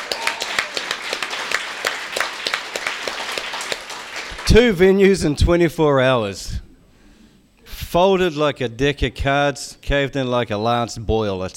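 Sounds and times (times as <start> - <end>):
audience applause: 0.0 - 4.8
speech: 4.5 - 6.6, 7.9 - 11.5.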